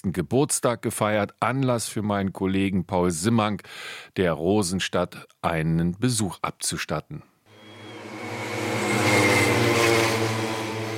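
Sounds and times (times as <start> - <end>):
speech: 0.0 - 7.3
rattling pacer motorcycle engines at motor-paced cycling race in Forst Lausitz Germany: 7.6 - 10.9.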